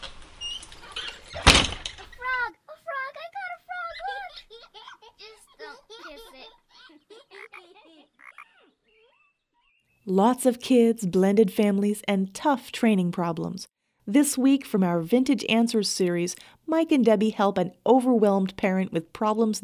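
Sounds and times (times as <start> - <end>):
high-pitched children's giggles and squeals: 0.8 - 9.8
door thudding shut: 1.3 - 2.2
speech: 10.1 - 19.6.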